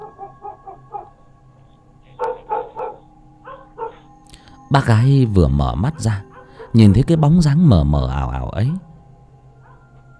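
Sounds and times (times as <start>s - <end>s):
neighbour's dog barking loudly: 0.0s - 1.1s, 2.1s - 4.1s, 6.2s - 6.8s
speech: 4.7s - 8.9s.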